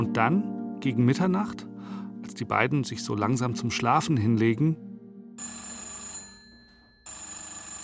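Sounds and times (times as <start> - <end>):
speech: 0.1 - 5.5
old-style telephone bell ringing: 5.4 - 7.8.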